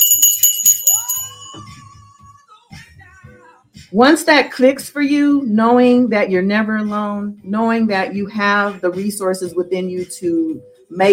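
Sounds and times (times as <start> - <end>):
bright bell ringing: 0.0 - 2.2
speech: 1.5 - 1.8, 3.9 - 11.1.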